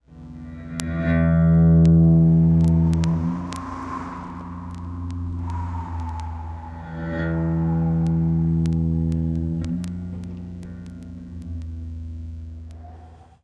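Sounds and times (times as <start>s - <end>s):
ghost wind: 1.5s - 9.7s.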